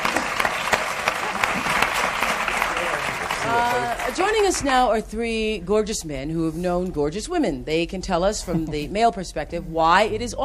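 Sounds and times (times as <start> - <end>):
studio audience applause: 0.0 - 4.7
speech: 3.5 - 10.4.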